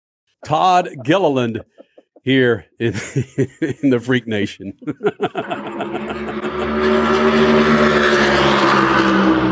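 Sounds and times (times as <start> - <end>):
laughter: 0.4 - 7.3
speech: 0.4 - 7.6
race car engines roaring past: 5.2 - 9.5.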